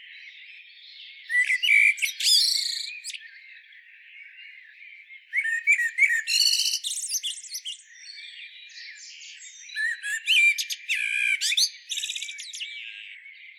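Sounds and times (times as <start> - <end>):
Common blackbird Turdus merula scratchy squealing calls: 1.3 - 3.2, 5.4 - 7.8, 9.8 - 12.7.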